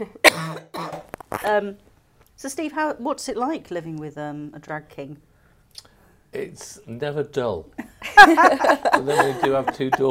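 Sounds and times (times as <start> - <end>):
person coughing: 0.1 - 1.1
speech: 1.4 - 10.0
laughter: 8.0 - 10.0.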